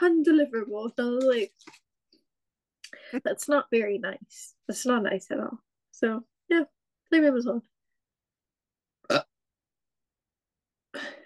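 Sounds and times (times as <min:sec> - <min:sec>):
speech: 0:00.0 - 0:01.8, 0:03.1 - 0:07.7, 0:09.1 - 0:09.3
person burping: 0:09.0 - 0:09.4.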